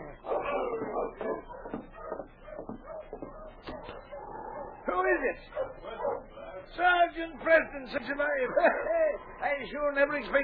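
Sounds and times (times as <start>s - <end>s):
dog whimpering and whining outside: 0.0s - 4.8s
speech: 5.1s - 5.8s, 6.8s - 10.4s.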